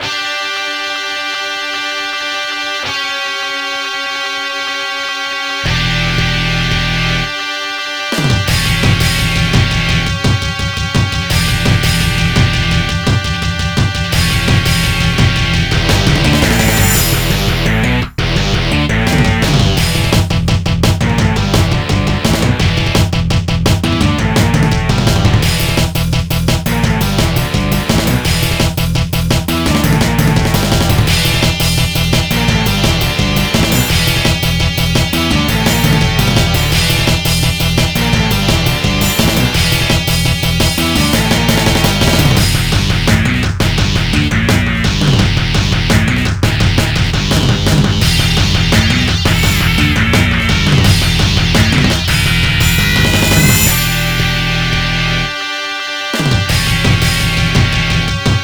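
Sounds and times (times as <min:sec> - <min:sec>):
background music: 0:00.0 - 0:58.4.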